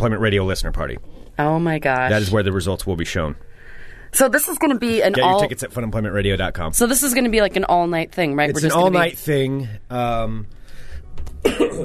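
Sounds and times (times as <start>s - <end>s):
speech: 0.0s - 3.5s, 4.1s - 10.6s, 11.4s - 11.8s
voiced sound: 4.9s - 5.5s
stuffed-up man clearing his throat: 11.4s - 11.8s.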